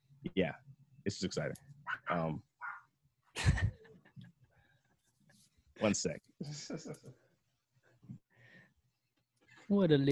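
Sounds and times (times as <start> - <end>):
speech: 0.2 - 2.5, 5.8 - 7.2, 9.7 - 10.0
dog giving a loud rough yelp: 1.9 - 2.9.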